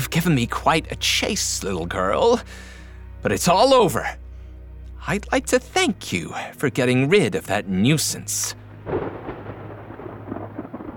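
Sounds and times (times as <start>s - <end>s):
speech: 0.1s - 4.2s, 5.0s - 9.2s
low rolling thunder of a storm in the rain: 8.7s - 10.9s.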